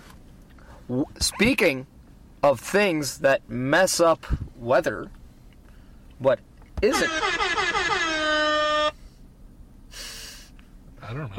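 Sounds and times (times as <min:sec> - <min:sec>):
speech: 0:00.9 - 0:05.2, 0:06.2 - 0:07.5, 0:11.1 - 0:11.3
air horn blast: 0:06.9 - 0:09.0
burst of hiss: 0:09.9 - 0:10.6.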